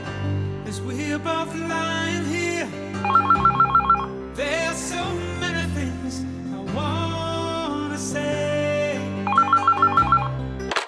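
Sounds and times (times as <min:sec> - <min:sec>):
music: 0:00.0 - 0:10.8
speech: 0:00.7 - 0:03.2
telephone ringing with electronic trills: 0:03.0 - 0:04.2, 0:09.3 - 0:10.5.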